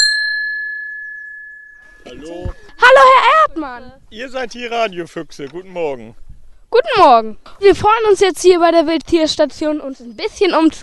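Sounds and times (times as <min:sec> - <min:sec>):
doorbell chime at the gate of a wildlife station: 0:00.0 - 0:02.8
speech: 0:02.0 - 0:10.8.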